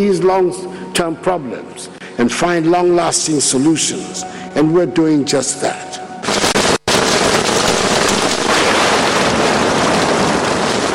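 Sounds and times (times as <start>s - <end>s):
speech: 0.0s - 6.0s
steady dense rainfall: 6.8s - 10.9s.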